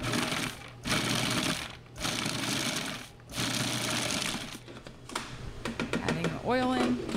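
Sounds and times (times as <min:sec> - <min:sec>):
food processor pulsing, grinding ingredients: 0:00.0 - 0:04.6
speech: 0:06.5 - 0:07.0.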